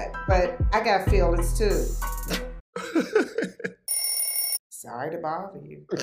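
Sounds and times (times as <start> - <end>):
speech: 0.3 - 3.2, 4.9 - 6.0
laughter: 2.8 - 3.8
telephone ringing: 3.9 - 4.6.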